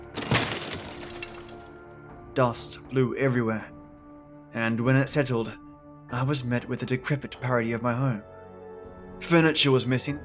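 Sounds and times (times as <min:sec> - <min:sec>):
door crashing open: 0:00.0 - 0:01.7
rattling splintering noise: 0:00.0 - 0:01.7
speech: 0:02.4 - 0:03.8, 0:04.5 - 0:08.3, 0:09.2 - 0:10.2.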